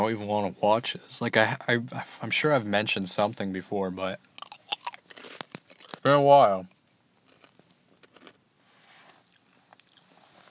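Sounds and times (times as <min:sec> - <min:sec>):
speech: 0:00.0 - 0:04.3, 0:06.0 - 0:06.7
crunchy chewing of food: 0:04.2 - 0:06.1, 0:07.2 - 0:08.4, 0:09.2 - 0:10.4.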